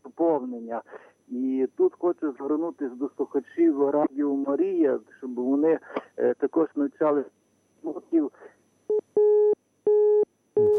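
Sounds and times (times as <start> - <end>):
speech: 0.2 - 8.6
telephone busy signal after a dropped call on a phone-in line: 8.9 - 10.7.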